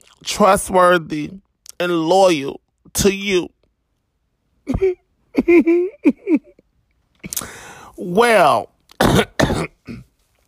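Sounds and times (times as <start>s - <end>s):
speech: 0.2s - 3.6s, 4.7s - 6.5s, 7.4s - 10.0s
person clearing throat: 9.0s - 10.1s.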